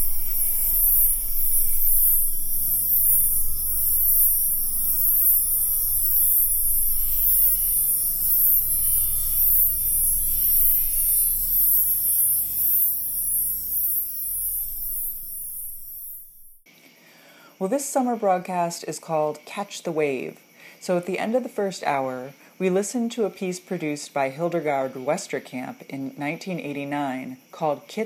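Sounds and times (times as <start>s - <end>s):
low humming rumble: 0.0s - 16.6s
digitally manipulated cricket chirps forming a high-pitched drone: 0.0s - 28.0s
speech: 17.6s - 28.0s.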